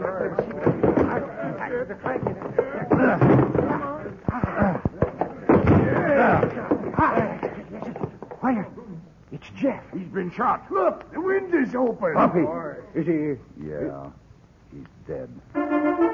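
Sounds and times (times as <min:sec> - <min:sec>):
agitated voices talking: 0:00.0 - 0:15.2
locked door being forced open with heavy thuds and slams: 0:02.2 - 0:08.4
speech: 0:09.5 - 0:16.1.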